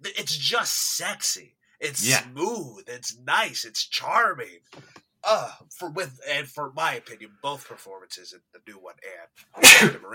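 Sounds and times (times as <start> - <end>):
conversational speech: 0.0 - 10.1
single loud sharp sneeze: 9.6 - 10.0.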